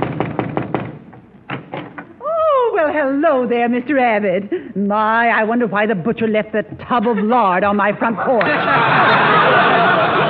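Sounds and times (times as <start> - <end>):
firm knocks on a door: 0.0 - 2.0
speech: 3.0 - 9.8
laughter: 6.9 - 10.2.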